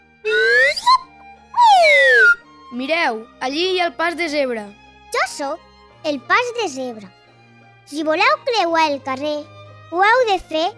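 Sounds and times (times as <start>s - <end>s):
magic whistle being blown: 0.2s - 2.4s
speech: 2.7s - 7.2s, 7.9s - 10.7s.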